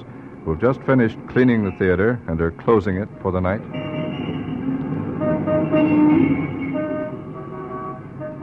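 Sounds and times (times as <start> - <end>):
street traffic with buses outside a theater at night: 0.0 - 8.4
speech: 0.4 - 3.9
vehicle horns tooting: 3.6 - 8.4.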